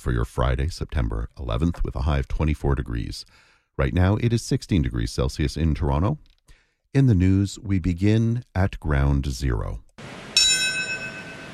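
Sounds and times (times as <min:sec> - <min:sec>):
speech: 0:00.0 - 0:06.3, 0:06.9 - 0:10.3
single memorial bell toll: 0:10.3 - 0:11.5.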